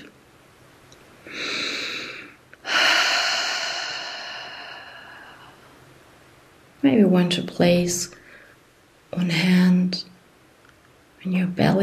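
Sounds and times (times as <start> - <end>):
deep breath in and exhale during a guided relaxation exercise: 1.2 - 5.7
speech: 6.8 - 8.2, 9.2 - 10.1, 11.2 - 11.8.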